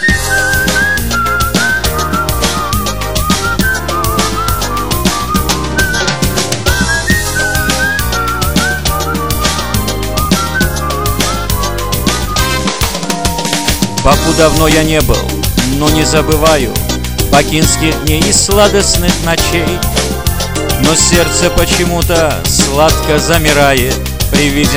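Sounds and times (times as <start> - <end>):
person whistling a cheerful Baku-style melody: 0.0 - 12.5
loud busy band backing: 0.0 - 24.7
speech: 14.1 - 20.2, 20.8 - 24.7.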